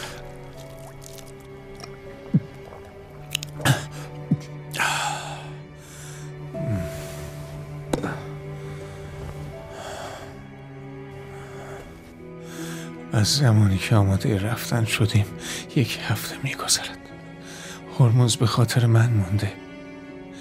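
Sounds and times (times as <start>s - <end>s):
water pouring: 0.0s - 4.2s
water dripping: 0.0s - 4.9s
gulping and swallowing: 0.1s - 4.5s
speech: 13.2s - 17.1s, 18.0s - 19.6s.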